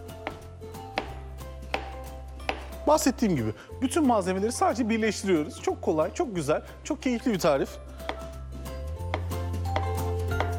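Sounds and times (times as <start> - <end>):
knife chopping a banana: 0.1 - 2.8, 9.0 - 10.5
speech: 2.9 - 7.9.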